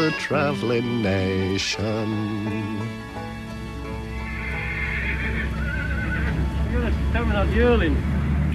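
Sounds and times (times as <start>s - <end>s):
speech: 0.0s - 3.4s, 6.8s - 8.5s
horse whinnying at a country horse fair: 3.8s - 6.5s.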